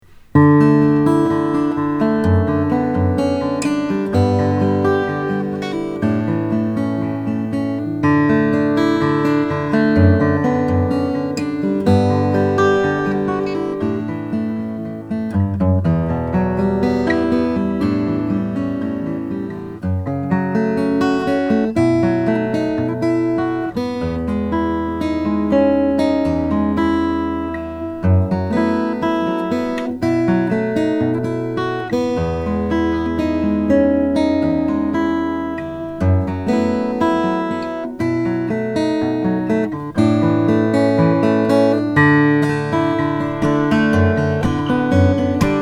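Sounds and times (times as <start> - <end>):
2008 Merrill OM 18 mahogany acoustic guitar: 0.0 - 45.6.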